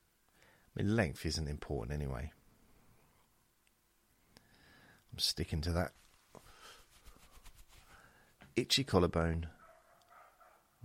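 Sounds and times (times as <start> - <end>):
speech: 0.8 - 2.4, 5.2 - 6.0, 8.6 - 9.6
several dogs barking: 9.5 - 10.8.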